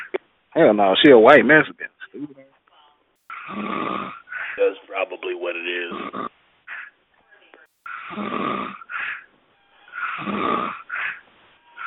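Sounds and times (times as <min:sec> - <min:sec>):
speech: 0:00.6 - 0:02.4, 0:03.5 - 0:06.3, 0:08.1 - 0:08.8, 0:10.2 - 0:10.8
man snoring: 0:03.3 - 0:04.6, 0:05.8 - 0:06.3, 0:07.9 - 0:09.3, 0:10.0 - 0:11.2
heavy huffing breaths: 0:03.3 - 0:04.7, 0:06.0 - 0:07.0, 0:07.8 - 0:11.8.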